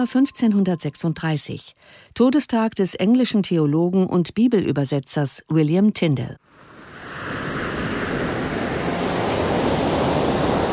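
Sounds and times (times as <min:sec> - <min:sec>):
speech: 0:00.0 - 0:06.5
sea waves and surf: 0:06.4 - 0:10.7
wind noise: 0:06.6 - 0:10.7.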